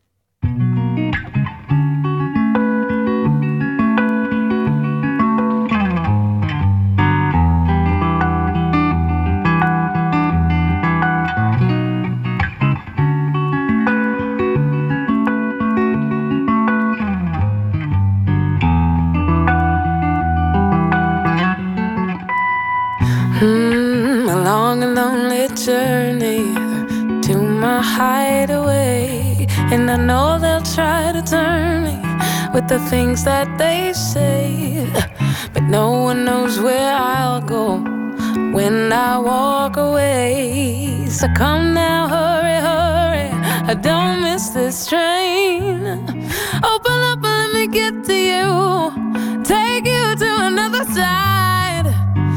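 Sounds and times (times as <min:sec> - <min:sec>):
full instrumental backing: 0:00.4 - 0:52.3
British female singer singing a song: 0:23.0 - 0:52.3
speech: 0:32.6 - 0:34.3, 0:38.9 - 0:42.4.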